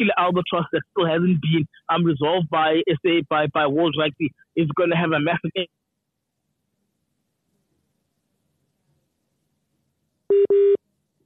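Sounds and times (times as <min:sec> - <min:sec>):
speech: 0:00.0 - 0:05.8, 0:10.3 - 0:10.8
short electronic phone tones of a call cutting off: 0:10.3 - 0:10.8.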